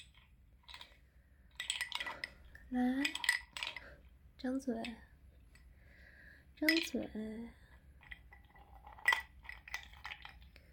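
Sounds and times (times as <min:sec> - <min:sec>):
ice cubes clinking: 0:00.0 - 0:04.0, 0:06.6 - 0:07.1, 0:08.0 - 0:10.6
speech: 0:02.7 - 0:03.2, 0:04.4 - 0:05.1, 0:06.6 - 0:07.6.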